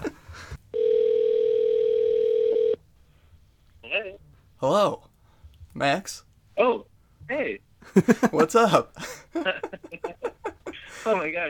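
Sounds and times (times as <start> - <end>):
laughter: 0.0 - 0.4, 7.8 - 11.2
telephone dial tone when placing a call: 0.8 - 2.8
speech: 4.6 - 5.0, 5.8 - 6.8, 7.4 - 9.2, 11.1 - 11.4.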